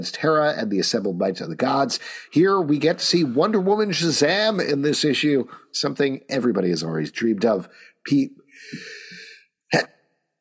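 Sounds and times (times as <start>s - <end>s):
speech: 0.0s - 9.1s, 9.7s - 10.0s
person sneezing: 8.7s - 10.0s.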